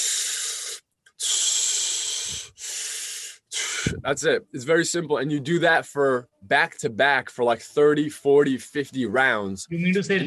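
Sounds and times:
rhythmic deep breathing technique for staying warm in icy conditions: 0:00.0 - 0:04.1
speech: 0:03.8 - 0:10.2.

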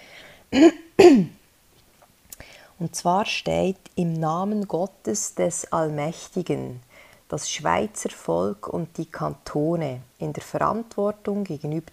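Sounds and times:
quiet breaths: 0:00.0 - 0:00.5, 0:02.3 - 0:02.8, 0:06.8 - 0:07.3
speech: 0:00.5 - 0:01.3, 0:02.8 - 0:11.9
forceful throat clearing: 0:00.6 - 0:01.4.

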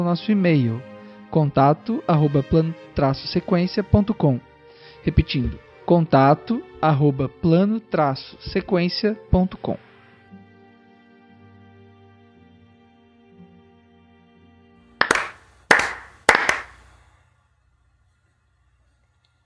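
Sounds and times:
speech: 0:00.0 - 0:09.9
hand claps for syncing a recording: 0:15.0 - 0:17.0.

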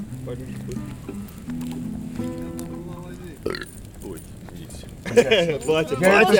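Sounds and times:
speech: 0:00.2 - 0:02.4, 0:05.2 - 0:06.3
long rumbling burp: 0:03.4 - 0:03.8
laughter: 0:04.6 - 0:06.3.

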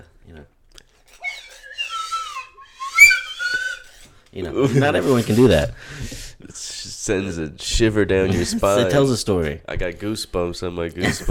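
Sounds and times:
slide whistle playing gliding tones: 0:01.1 - 0:04.1
speech: 0:04.4 - 0:11.2.

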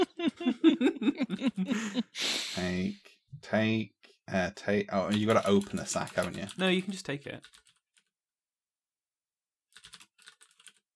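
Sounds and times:
laughter: 0:00.0 - 0:02.3
speech: 0:03.5 - 0:07.7
typing commands on a computer keyboard in a text adventure game: 0:05.1 - 0:07.8, 0:09.8 - 0:10.8.

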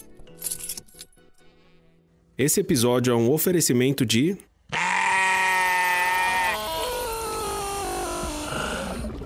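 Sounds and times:
speech: 0:02.4 - 0:04.5
sheep bleating sound logo: 0:04.7 - 0:08.9.

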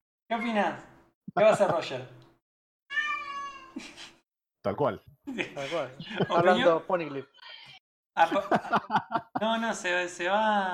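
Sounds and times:
speech: 0:00.3 - 0:02.2, 0:03.8 - 0:07.6, 0:08.2 - 0:10.7
laughter: 0:01.3 - 0:02.0, 0:05.3 - 0:07.2, 0:08.2 - 0:10.4
female cat meowing with a breathy trill: 0:02.9 - 0:03.8.

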